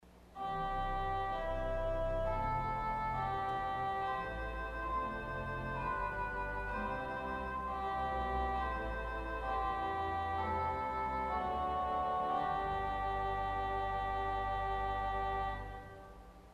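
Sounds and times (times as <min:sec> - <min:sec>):
organ stops: 0:00.3 - 0:16.5
English horn solo: 0:00.4 - 0:16.3.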